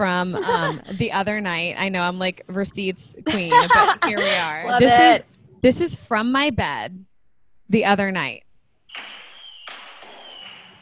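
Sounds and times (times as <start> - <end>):
speech: 0.0 - 7.1, 7.7 - 8.4
laughter: 0.2 - 1.1, 3.3 - 5.2
fireworks popping and crackling at night: 8.9 - 10.7.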